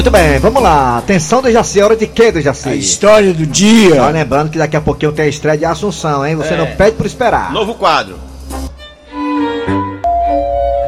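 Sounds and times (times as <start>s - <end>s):
speech: 0.0s - 8.6s
doorbell chime: 10.0s - 10.8s.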